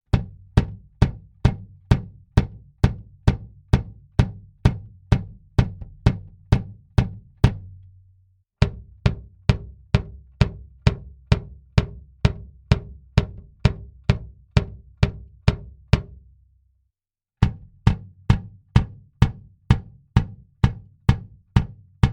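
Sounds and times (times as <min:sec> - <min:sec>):
bass drum recorded with RE27ND microphone: 0:00.0 - 0:16.4, 0:17.4 - 0:22.1.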